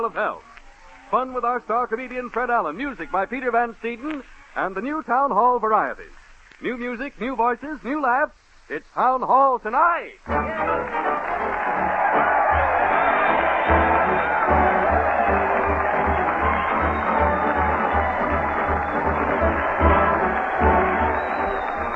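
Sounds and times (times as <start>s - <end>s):
speech: 0.0s - 0.5s, 1.1s - 11.4s
crowd cheering and shouting at a street parade: 10.3s - 21.9s.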